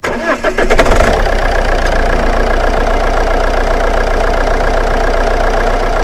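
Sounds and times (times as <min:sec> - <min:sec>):
Alfa Romeo engine idling: 0:00.0 - 0:06.0.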